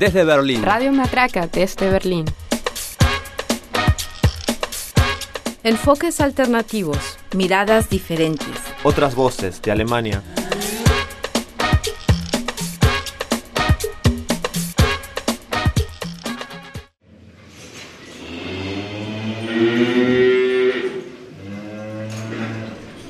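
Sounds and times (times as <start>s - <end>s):
speech: 0.0s - 2.4s, 5.6s - 10.4s
clattering percussive beats: 0.0s - 7.0s, 7.7s - 9.1s, 10.1s - 16.6s
cow mooing: 10.2s - 11.2s, 18.2s - 23.0s.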